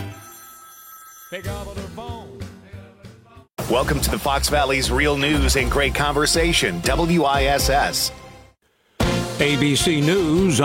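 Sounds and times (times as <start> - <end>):
telephone ringing with bright electronic tones: 0.0 - 2.1
speech: 1.3 - 2.4, 3.7 - 8.2, 9.4 - 10.6.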